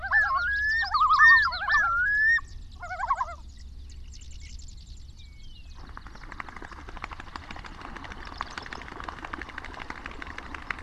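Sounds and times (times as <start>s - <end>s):
Common Loons calling in Wisconsin: 0.0s - 3.4s.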